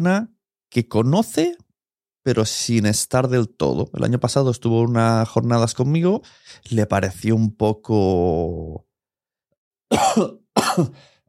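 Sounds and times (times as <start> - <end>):
speech: 0.0 - 1.6, 2.2 - 8.9, 9.9 - 11.1
harsh raspy coughs: 9.9 - 11.2.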